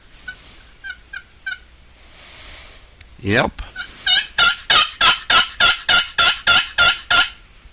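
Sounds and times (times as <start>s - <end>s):
loud sharp turkey clucks made on a one-of-a-kind turkey call: 0.2s - 1.8s, 3.6s - 7.5s
speech: 3.2s - 3.7s.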